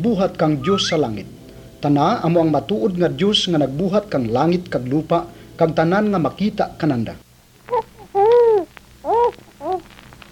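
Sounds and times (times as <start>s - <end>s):
speech: 0.0s - 7.8s
faint low hum: 0.0s - 10.2s
baby crying: 7.7s - 10.2s.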